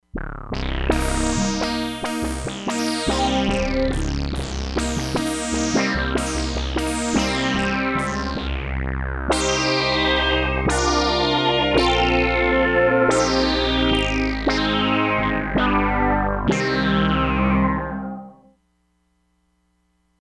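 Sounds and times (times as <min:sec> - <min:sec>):
hi-res synthesizer: 0:00.3 - 0:18.5.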